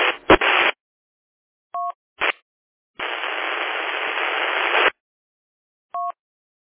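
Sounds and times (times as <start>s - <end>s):
two radio stations transmitting simultaneously into harsh static: 0.0s - 0.8s, 3.0s - 4.9s
two-tone beeps: 6.0s - 6.2s.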